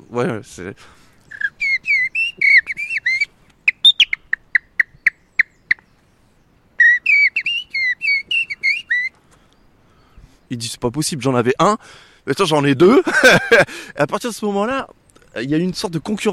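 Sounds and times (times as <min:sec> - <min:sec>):
speech: 0:00.1 - 0:01.0, 0:10.5 - 0:16.3
person whistling an imitation of common blackbird song: 0:01.3 - 0:04.2, 0:06.8 - 0:09.2
laughter: 0:12.8 - 0:13.8.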